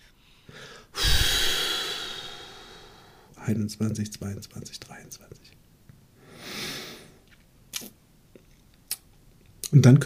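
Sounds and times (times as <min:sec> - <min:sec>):
deep breath in and long airy exhale: 0:00.2 - 0:03.3
speech: 0:03.5 - 0:05.6, 0:09.7 - 0:10.0.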